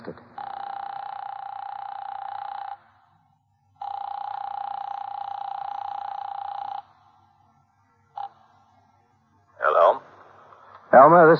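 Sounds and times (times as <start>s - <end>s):
telephone call ringing through the line: 0.0s - 3.2s, 3.8s - 7.2s, 8.1s - 8.4s
speech: 10.9s - 11.3s.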